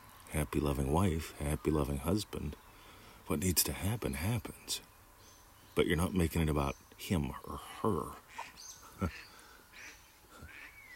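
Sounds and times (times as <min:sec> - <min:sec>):
speech: 0:00.3 - 0:02.6, 0:03.3 - 0:04.9, 0:05.8 - 0:09.3
pet duck quacking: 0:08.3 - 0:10.7.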